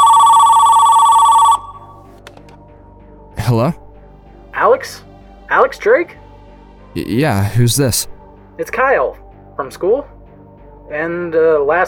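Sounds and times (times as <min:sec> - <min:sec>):
landline telephone ringing in a living room: 0:00.0 - 0:02.1
speech: 0:03.5 - 0:03.8, 0:04.8 - 0:05.0, 0:05.7 - 0:06.2, 0:06.9 - 0:10.2, 0:10.9 - 0:11.8.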